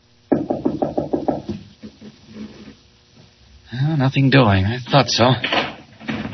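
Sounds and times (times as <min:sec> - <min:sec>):
heavy knocks on a locked wooden door: 0:00.3 - 0:02.0
speech: 0:03.7 - 0:05.6.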